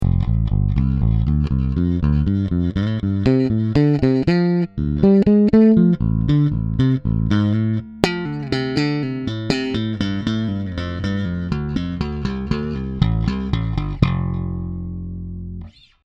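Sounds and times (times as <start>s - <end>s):
bass guitar with middle neck pickup: 0.0s - 16.0s.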